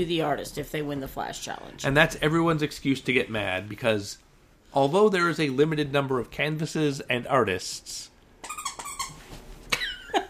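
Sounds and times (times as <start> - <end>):
speech: 0.0 - 8.1
dog whining and yelping: 8.4 - 9.3.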